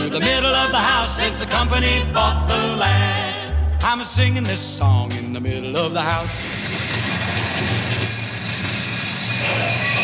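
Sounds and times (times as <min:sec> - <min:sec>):
speech: 0:00.1 - 0:06.8
car or train crash with grinding rumble and engine-like drone: 0:06.3 - 0:09.9.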